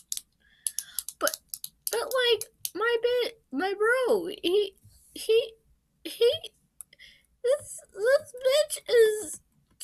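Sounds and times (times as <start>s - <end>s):
pen clicking: 0.0s - 2.8s
speech: 3.5s - 5.6s, 8.0s - 9.4s.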